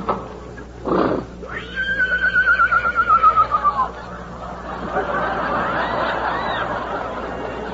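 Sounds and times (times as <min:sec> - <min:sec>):
lame horse snorting: 0:00.8 - 0:01.4
lame horse neighing in a bitter storm: 0:00.8 - 0:03.9
laughter: 0:03.1 - 0:07.7.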